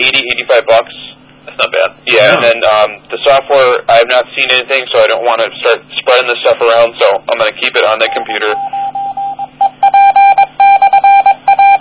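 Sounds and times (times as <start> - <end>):
speech: 0.0 - 9.0
radio repeater call sign in Morse code tone: 8.0 - 11.7.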